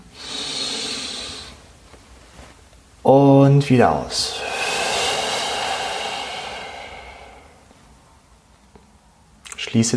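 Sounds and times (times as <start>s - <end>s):
deep inhalation through the nose during a guided meditation: 0.1s - 1.6s, 4.2s - 7.9s
speech: 3.1s - 4.4s, 9.7s - 9.9s.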